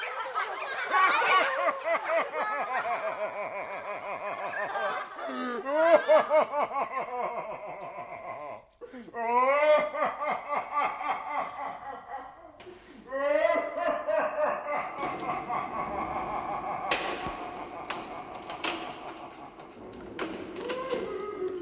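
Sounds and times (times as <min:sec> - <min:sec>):
people laughing: 0:00.0 - 0:21.6
speech: 0:00.4 - 0:11.9
heavy iron door slamming with sharp metallic bangs: 0:12.6 - 0:13.1, 0:14.7 - 0:21.6.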